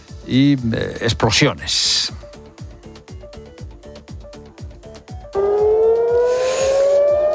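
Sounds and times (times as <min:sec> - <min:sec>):
speech: 0:00.3 - 0:02.3
air raid siren sounding in Israel during a missile attack: 0:05.4 - 0:07.3
rhythmic pulse: 0:05.4 - 0:07.3.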